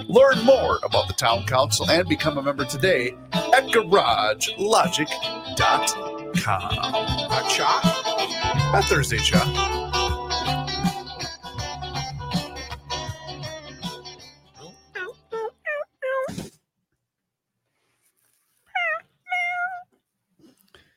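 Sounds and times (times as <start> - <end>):
speech: 0.0 - 9.8
busy music in a mayonnaise commercial: 0.0 - 14.3
cat meowing in a mayonnaise commercial: 15.0 - 16.4, 18.7 - 19.9.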